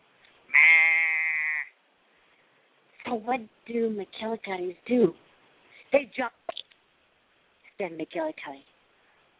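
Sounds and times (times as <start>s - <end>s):
sheep bleating: 0.5s - 1.8s
speech: 3.1s - 5.3s, 5.9s - 6.4s, 7.8s - 8.7s.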